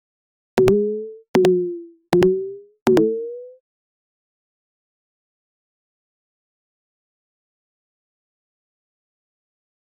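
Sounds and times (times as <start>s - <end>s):
cartoon game jump sound: 0.6s - 3.6s.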